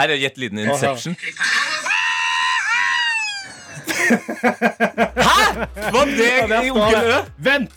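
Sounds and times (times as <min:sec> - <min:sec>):
speech: 0:00.0 - 0:01.7, 0:04.1 - 0:07.7
laughter: 0:01.2 - 0:07.1
rapid choppy excited yelps: 0:01.3 - 0:03.8
person's high-pitched joyful victory scream played from a video: 0:01.6 - 0:03.8, 0:05.2 - 0:05.7.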